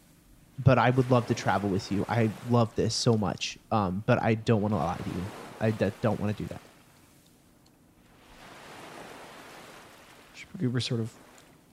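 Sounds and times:
wind: 0:00.0 - 0:11.7
speech: 0:00.6 - 0:06.7, 0:10.5 - 0:11.2
ocean waves: 0:00.7 - 0:03.1, 0:04.6 - 0:07.2, 0:07.9 - 0:11.7.

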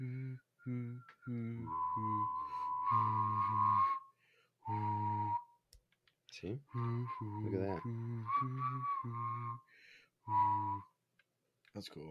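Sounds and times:
person humming low sustained notes: 0:00.0 - 0:04.0, 0:04.7 - 0:05.4, 0:06.7 - 0:09.6
person whistling a higher tone: 0:00.0 - 0:05.6, 0:06.7 - 0:09.7, 0:10.3 - 0:10.9
speech: 0:06.4 - 0:10.9, 0:11.7 - 0:12.0.

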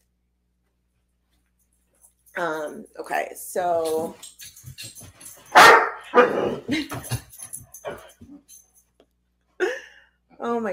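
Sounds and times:
speech: 0:02.4 - 0:07.2, 0:10.4 - 0:10.7
dogs yipping and whimpering: 0:04.2 - 0:08.6
dogs barking: 0:04.4 - 0:08.1.

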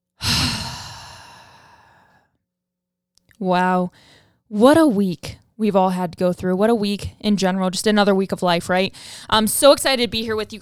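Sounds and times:
deep breathy exhale: 0:00.2 - 0:02.3
speech: 0:03.4 - 0:10.5.

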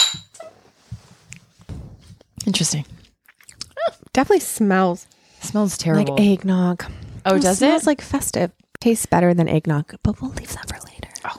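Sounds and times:
glass handling noise: 0:00.0 - 0:00.5
wine glasses clinking in a toast: 0:00.0 - 0:00.5
speech: 0:02.5 - 0:03.0, 0:04.2 - 0:10.8.

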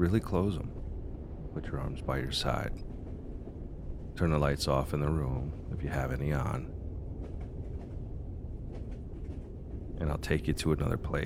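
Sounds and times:
speech: 0:00.0 - 0:00.8, 0:01.5 - 0:03.0, 0:04.2 - 0:06.8, 0:10.0 - 0:11.2
train rolling along rails heard from inside the car: 0:00.0 - 0:11.2
train wheels clacking over track joints: 0:02.3 - 0:11.2.

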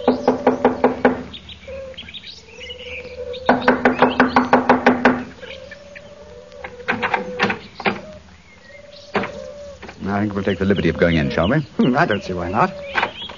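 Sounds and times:
knocking on a door: 0:00.0 - 0:01.3, 0:03.5 - 0:05.3
speech: 0:10.2 - 0:12.9.

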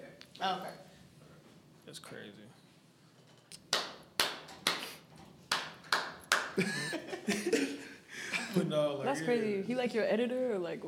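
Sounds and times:
speech: 0:00.4 - 0:00.9, 0:01.9 - 0:02.6, 0:06.6 - 0:07.1, 0:08.6 - 0:10.8
hand claps for sync: 0:03.5 - 0:06.6
laughter: 0:06.6 - 0:08.8.

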